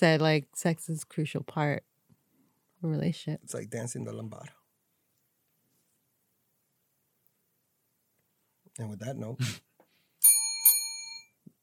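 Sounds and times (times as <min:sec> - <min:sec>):
speech: 0:00.0 - 0:01.9, 0:02.8 - 0:04.6, 0:08.8 - 0:09.7
bright metallic bell ringing to end the round: 0:10.2 - 0:11.4.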